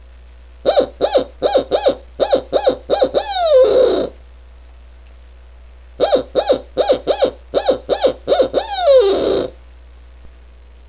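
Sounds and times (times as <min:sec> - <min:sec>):
owl call from a game call: 0:00.6 - 0:04.2, 0:06.0 - 0:09.6.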